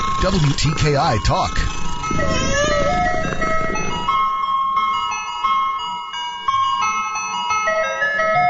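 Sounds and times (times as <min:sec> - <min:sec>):
faint road rumble: 0:00.0 - 0:04.5
electronic chime ice cream truck jingle: 0:00.0 - 0:08.4
speech: 0:00.2 - 0:03.0.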